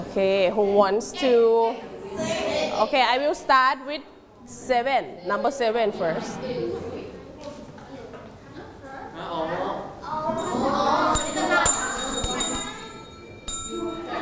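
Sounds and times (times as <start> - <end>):
speech: 0.2 - 6.8
desk bell struck in a picture-naming quiz: 10.4 - 14.2.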